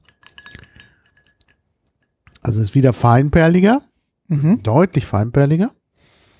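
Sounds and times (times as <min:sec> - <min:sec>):
ice cubes clattering into a glass: 0:00.0 - 0:02.1
speech: 0:02.4 - 0:05.8.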